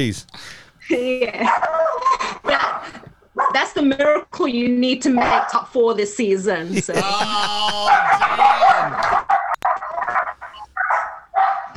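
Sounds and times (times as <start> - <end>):
laughter: 0.0 - 1.4, 6.6 - 9.1
speech: 0.0 - 9.1
several dogs barking and yapping: 1.4 - 2.8, 3.4 - 3.7, 7.4 - 11.7.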